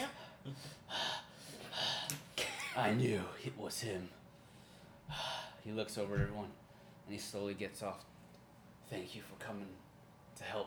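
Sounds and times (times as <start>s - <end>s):
heavy breathing after a fight: 0.1s - 2.2s, 4.4s - 5.6s
speech: 0.4s - 1.1s, 2.8s - 4.2s, 5.1s - 8.1s, 8.9s - 10.6s.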